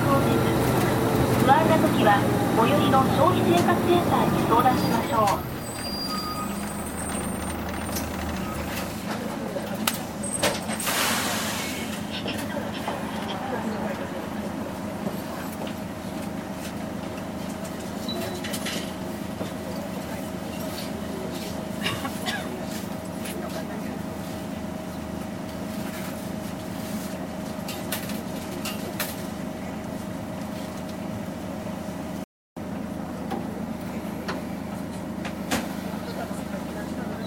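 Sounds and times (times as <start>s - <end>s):
Tokyo metropolitan Toei city bus engine droning inside the cabin: 0.0s - 37.2s
speech: 1.8s - 5.6s.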